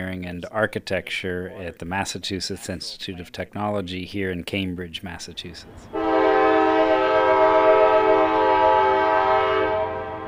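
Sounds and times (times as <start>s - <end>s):
speech: 0.0s - 6.1s
train horn passing through a university campus in Cambridge, Massachusetts: 5.9s - 10.2s.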